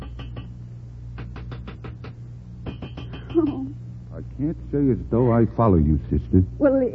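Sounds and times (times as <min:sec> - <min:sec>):
knuckles tapping on a metal radiator: 0:01.2 - 0:03.7
speech: 0:03.3 - 0:03.8, 0:04.4 - 0:06.9.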